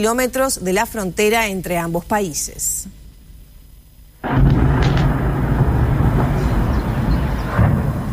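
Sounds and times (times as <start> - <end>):
speech: 0.0 - 3.0
explosions at an oil terminal during a drone attack: 4.2 - 8.1
heavy sustained rumble: 4.2 - 8.1.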